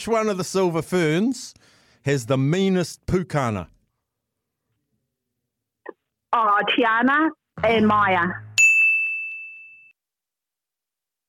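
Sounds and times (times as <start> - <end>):
speech: 0.0 - 3.8, 6.3 - 8.5
bell ding for a quiz answer: 8.6 - 10.0.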